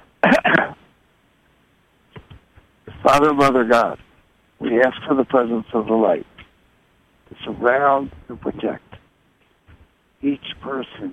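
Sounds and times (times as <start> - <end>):
person clearing throat: 0.2 - 0.8
speech: 3.1 - 4.0, 4.6 - 6.3, 7.4 - 8.9, 10.2 - 11.1.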